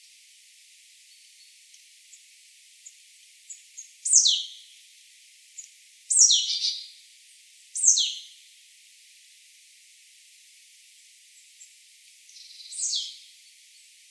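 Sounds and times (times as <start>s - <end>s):
marsh tit Poecile palustris sharp downslurred buzzy call: 4.0s - 4.5s, 5.6s - 6.8s, 7.8s - 8.2s, 12.4s - 13.2s.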